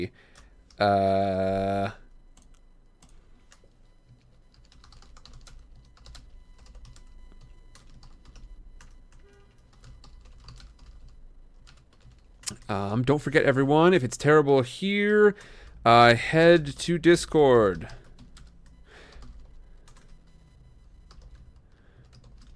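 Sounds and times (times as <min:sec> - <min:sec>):
speech: 0:00.0 - 0:02.0, 0:12.7 - 0:18.0
typing on a computer keyboard: 0:02.4 - 0:12.7, 0:17.9 - 0:20.2, 0:21.1 - 0:22.5.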